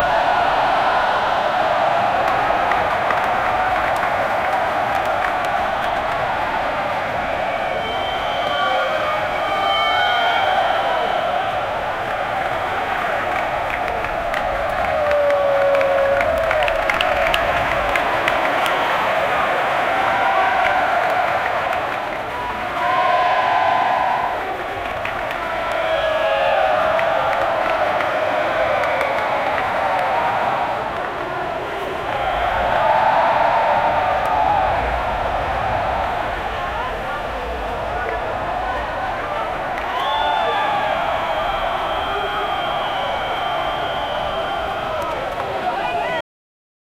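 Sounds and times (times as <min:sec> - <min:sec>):
crowd cheering loudly: 0:00.0 - 0:46.2.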